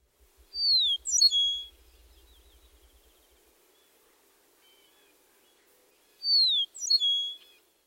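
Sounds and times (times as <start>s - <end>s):
eastern meadowlark song with downslurred whistles: 0.4s - 3.4s, 6.2s - 7.6s.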